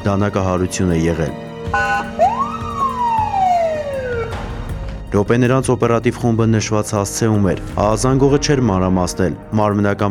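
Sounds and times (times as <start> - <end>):
speech: 0.0 - 2.3, 5.1 - 10.1
ambulance siren wailing: 1.7 - 4.6.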